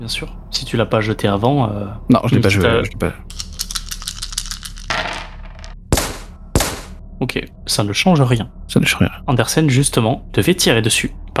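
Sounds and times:
speech: 0.0s - 3.4s, 7.2s - 11.3s
bonus die rolled during a tabletop role-playing game: 3.3s - 6.9s.

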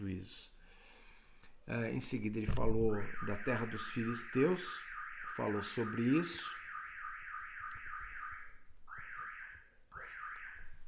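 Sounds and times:
speech: 0.0s - 0.6s, 1.6s - 6.6s
neighbour's alarm going off with an electronic warbling siren: 2.7s - 10.8s.

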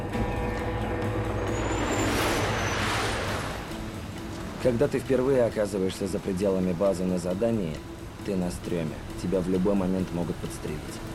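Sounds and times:
tanks driving over dusty terrain with heavy engines roaring: 0.0s - 4.6s
speech: 4.6s - 11.1s.

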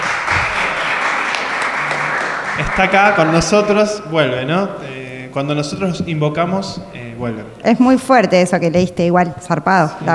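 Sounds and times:
applause after a poetry reading: 0.0s - 3.8s
speech: 2.8s - 10.1s.

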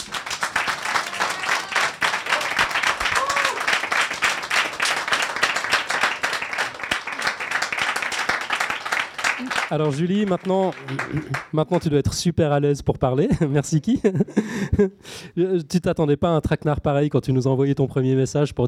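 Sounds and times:
audience applause: 0.0s - 11.8s
speech: 9.7s - 18.6s.

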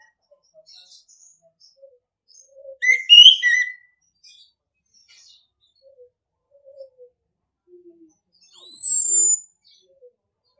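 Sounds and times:
orange-headed thrush singing mellow whistled phrase: 2.8s - 3.8s.

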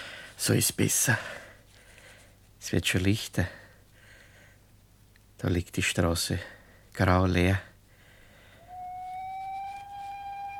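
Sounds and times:
low hiss: 0.0s - 10.5s
speech: 0.4s - 1.4s, 2.6s - 3.6s, 5.4s - 7.7s
train whistle from a railway station: 8.5s - 10.5s.

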